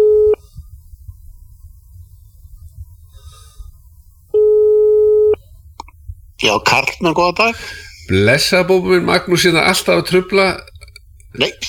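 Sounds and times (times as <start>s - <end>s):
telephone line beeps on a radio phone-in call: 0.0s - 0.4s, 4.4s - 5.4s
low hum on a telephone line: 0.0s - 11.6s
speech: 6.4s - 10.7s, 11.4s - 11.6s.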